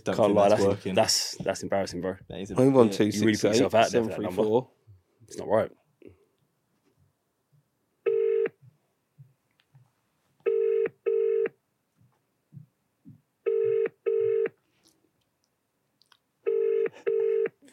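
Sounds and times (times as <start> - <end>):
speech: 0.0 - 5.8
telephone ringing tone heard down the line during a call to a pizza shop: 8.1 - 8.6, 10.5 - 11.5, 13.5 - 14.5, 16.5 - 17.5.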